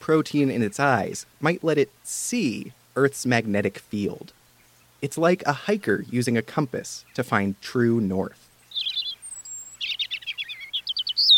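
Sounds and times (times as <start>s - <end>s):
speech: 0.0s - 4.4s, 5.0s - 8.4s
European robin singing with warbling notes, whistle and twittering trills: 4.2s - 11.3s.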